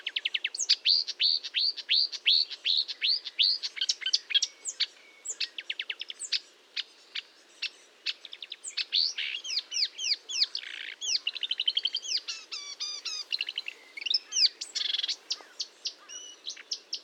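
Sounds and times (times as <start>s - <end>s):
marsh warbler song: 0.0s - 17.0s.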